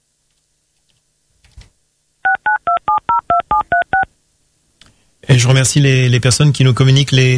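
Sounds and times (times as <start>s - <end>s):
telephone keypad dialing tones: 2.3s - 4.1s
speech: 5.4s - 7.3s.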